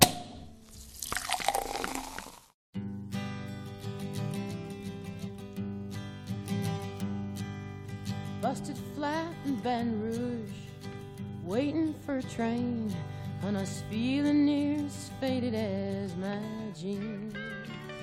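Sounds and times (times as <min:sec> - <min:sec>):
Sekt sparkling wine poured from a bottle and fizzing: 0:00.6 - 0:02.5
song with guitar and vocals: 0:03.1 - 0:18.0
speech: 0:08.5 - 0:10.6, 0:11.5 - 0:17.4.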